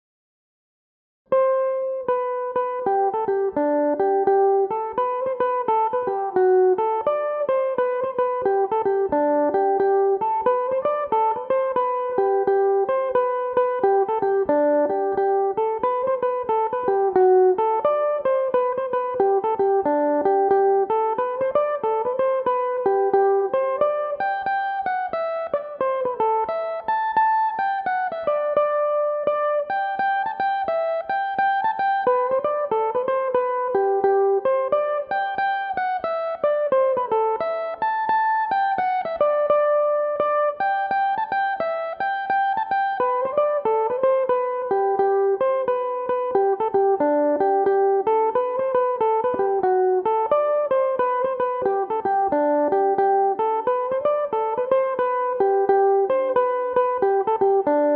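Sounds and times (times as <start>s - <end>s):
Irish electric mandolin playing a jig in G major: 1.3s - 57.9s.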